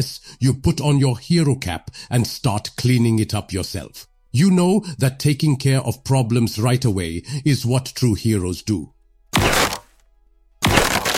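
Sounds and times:
speech: 0:00.0 - 0:09.6
something hard cracking and crunching as it is broken by tail swipes: 0:09.4 - 0:10.0, 0:10.6 - 0:11.1.

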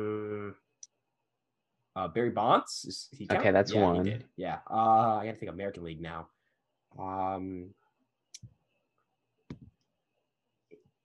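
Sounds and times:
short hummed vocal sound: 0:00.0 - 0:00.6
speech: 0:02.0 - 0:07.8.

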